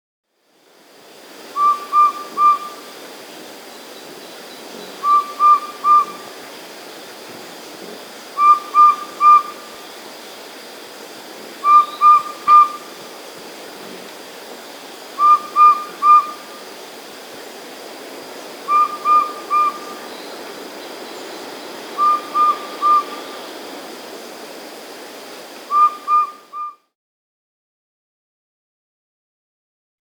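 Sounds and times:
Subtropical Pygmy-Owl Glaucidium parkeri: 1.5s - 10.3s, 11.5s - 13.4s, 15.0s - 17.0s, 18.2s - 24.0s, 25.6s - 26.8s.

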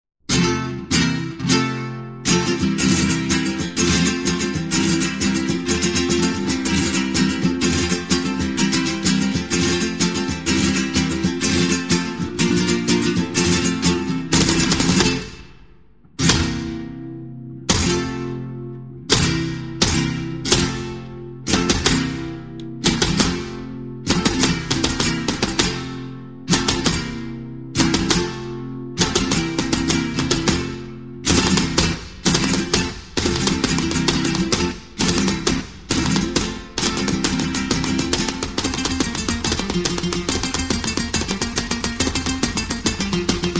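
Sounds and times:
Spanish flamenco zapateado footwork: 0.3s - 43.5s.

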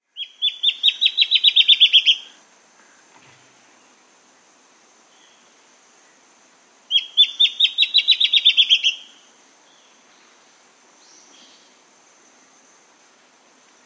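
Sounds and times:
Black-chinned antbird singing: 0.1s - 2.3s, 6.9s - 10.4s.

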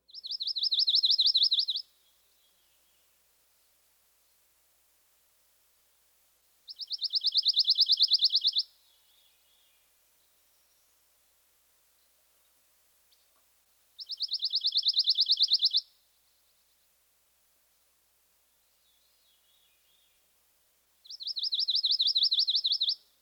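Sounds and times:
pine warbler musical trill song: 0.0s - 3.2s, 6.7s - 11.0s, 14.0s - 16.9s, 21.0s - 23.1s.

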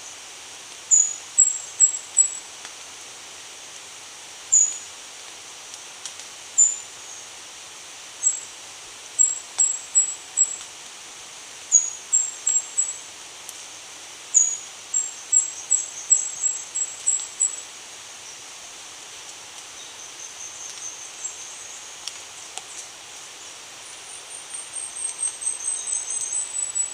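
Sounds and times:
light hiss: 0.0s - 26.9s
Indigo flowerpiercer song in Ecuador: 0.9s - 2.4s, 4.5s - 4.9s, 6.6s - 7.3s, 8.2s - 8.5s, 9.2s - 10.6s, 11.7s - 13.1s, 14.3s - 18.5s, 19.6s - 26.9s.

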